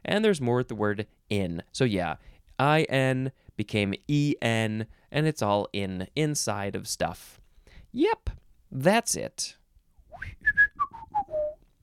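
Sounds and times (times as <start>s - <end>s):
speech: 0.1s - 9.6s
person whistling a short descending tune: 10.1s - 11.6s.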